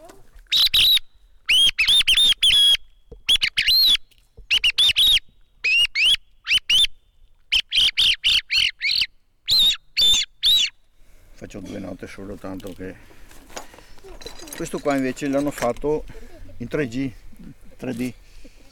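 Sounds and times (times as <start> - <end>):
handheld bird call lure imitating a song thrush: 0.5 - 10.8
speech: 11.5 - 13.3, 14.6 - 18.2.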